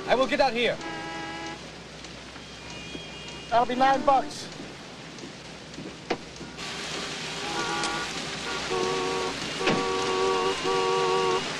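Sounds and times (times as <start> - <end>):
car horn: 0.0 - 1.7, 2.4 - 4.2, 7.4 - 11.5
torrential rain pouring: 0.0 - 11.5
speech: 0.1 - 1.0, 3.5 - 4.6.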